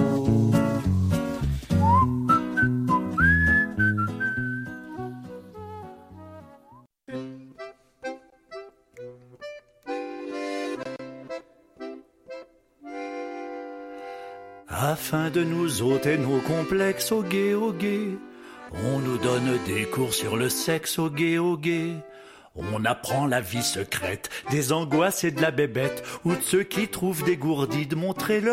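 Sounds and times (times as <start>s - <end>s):
full bouncy instrumental accompaniment: 0.0s - 28.5s
person whistling a gliding melodic line: 1.7s - 6.9s
speech: 15.0s - 28.5s.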